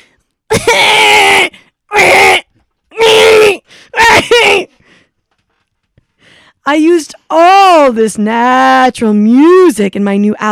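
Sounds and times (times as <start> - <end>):
child crying loudly in a queue: 0.5 - 4.7
speech: 6.7 - 10.4.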